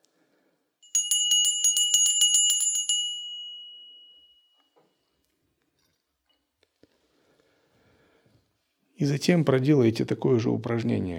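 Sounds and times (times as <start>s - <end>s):
small hand bell ringing rapidly: 0.8s - 4.8s
speech: 9.0s - 11.1s.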